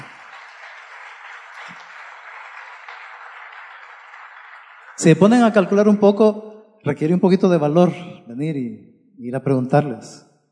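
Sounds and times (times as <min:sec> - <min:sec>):
audience applause: 0:00.0 - 0:05.7
speech: 0:05.0 - 0:10.3.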